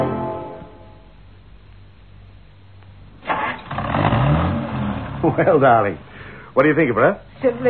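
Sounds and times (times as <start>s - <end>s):
new car engine starting and revving: 3.2s - 5.8s
speech: 5.3s - 7.6s.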